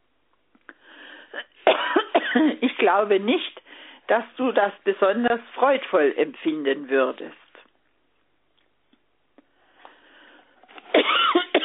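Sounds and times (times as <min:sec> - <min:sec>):
person coughing: 0:01.4 - 0:02.6, 0:10.9 - 0:11.6
speech: 0:02.3 - 0:07.4.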